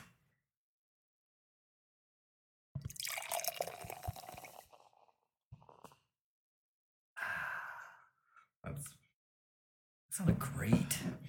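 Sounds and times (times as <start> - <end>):
beer pouring from a bottle, glugging: 2.9 - 5.1
speech: 10.2 - 11.2.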